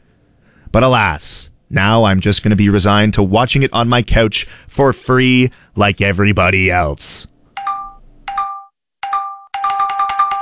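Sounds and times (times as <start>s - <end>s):
speech: 0.7s - 7.3s
phone notification chimes for incoming group chat messages: 7.6s - 10.4s.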